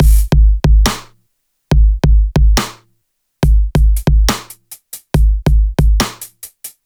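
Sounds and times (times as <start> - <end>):
dubstep drum loop break at 140 BPM: 0.0 - 1.1, 1.7 - 2.8, 3.4 - 6.8.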